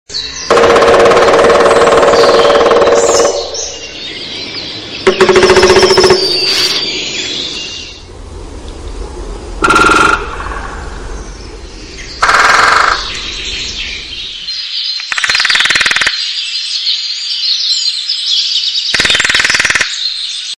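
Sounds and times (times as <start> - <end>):
woodpecker: 0.4 - 7.0, 9.6 - 10.6, 12.2 - 13.6, 14.9 - 16.4, 18.9 - 20.3.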